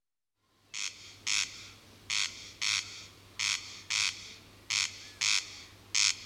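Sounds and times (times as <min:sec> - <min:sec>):
corn crake calling in harsh grating paired notes: 0:00.8 - 0:06.2.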